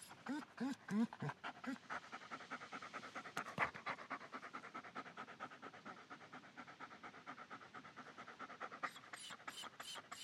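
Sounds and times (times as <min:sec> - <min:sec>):
German Shepherd dog whining: 0:00.2 - 0:01.8
German Shepherd dog panting: 0:00.2 - 0:10.2.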